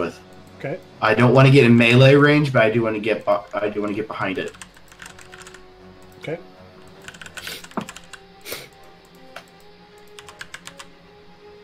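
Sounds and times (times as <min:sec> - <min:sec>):
speech: 0:00.0 - 0:04.7, 0:06.3 - 0:06.5
computer keyboard typing: 0:03.1 - 0:10.9.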